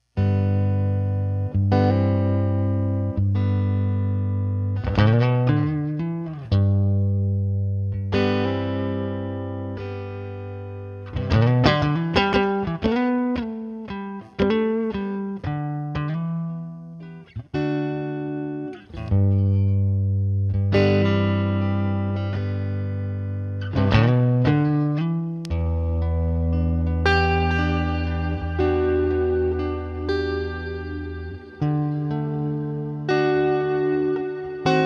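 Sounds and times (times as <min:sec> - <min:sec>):
bluesy R&B clean Tele style electric guitar through reverb pedal: 0:00.0 - 0:34.8.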